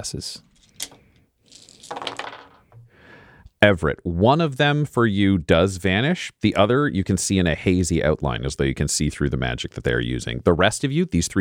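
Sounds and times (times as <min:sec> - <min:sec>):
speech: 0:00.0 - 0:00.5, 0:03.6 - 0:11.3
handful of dice clattering and rattling across a hard surface: 0:00.6 - 0:02.8.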